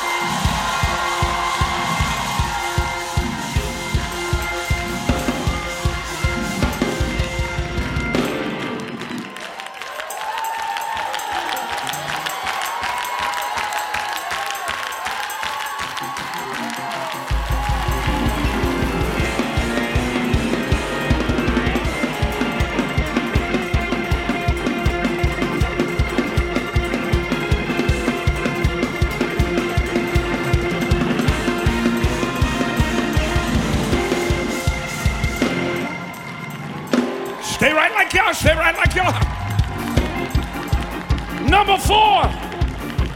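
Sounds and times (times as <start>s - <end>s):
large crowd shouting and clapping loudly: 0.0s - 43.1s.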